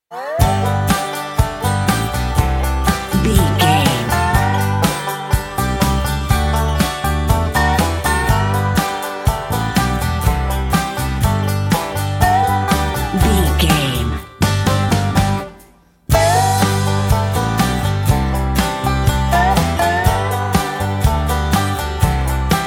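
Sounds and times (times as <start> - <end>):
uplifting driving pop country rock music with bluegrass and folk: 0.4 - 22.6.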